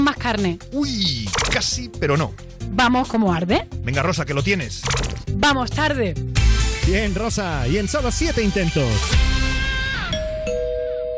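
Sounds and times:
speech: 0.1s - 6.3s, 6.9s - 9.4s
two-tone ding-dong doorbell chime: 10.1s - 11.1s.

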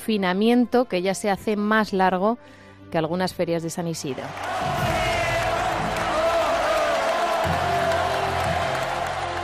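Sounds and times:
speech: 0.0s - 4.8s
large bullring crowd cheering and applauding in an ovation: 4.2s - 9.4s.

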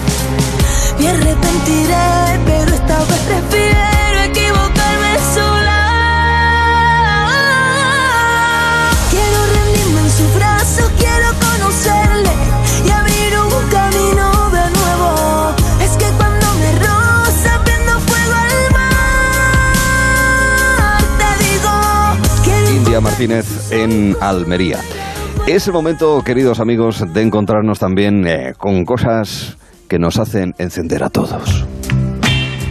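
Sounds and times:
pop song by a female artist with full band: 0.0s - 32.6s
speech: 1.0s - 3.9s, 23.2s - 31.7s.

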